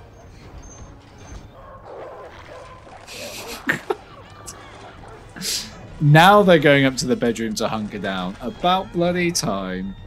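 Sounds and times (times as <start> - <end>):
dog barking sharply: 1.3 - 3.7, 4.5 - 5.3
laughter: 3.0 - 6.0
speech: 6.0 - 10.0.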